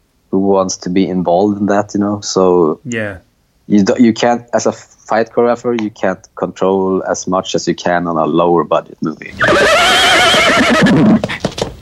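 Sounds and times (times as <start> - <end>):
speech: 0.4 - 11.5
horse whinnying and snorting: 9.3 - 11.3.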